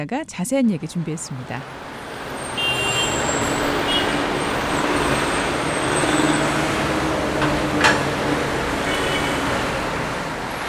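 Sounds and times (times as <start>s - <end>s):
speech: 0.0s - 1.9s
city traffic engines droning: 0.0s - 10.6s
vehicles passing nearby in city traffic: 0.0s - 10.6s.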